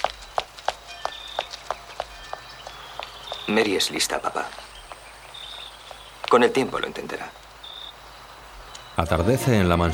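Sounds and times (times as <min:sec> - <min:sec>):
running footsteps on a hard floor: 0:00.0 - 0:06.7
speech: 0:03.5 - 0:04.6, 0:06.3 - 0:07.4, 0:09.0 - 0:09.9.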